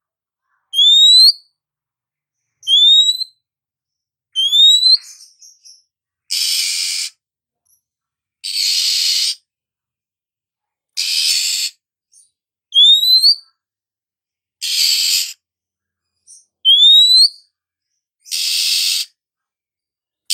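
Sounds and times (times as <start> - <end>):
female Oriental magpie-robin calling: 0.7 - 1.4, 2.6 - 3.3, 4.4 - 7.2, 8.4 - 9.4, 11.0 - 12.2, 12.8 - 13.4, 14.6 - 15.4, 16.3 - 17.4, 18.2 - 19.2.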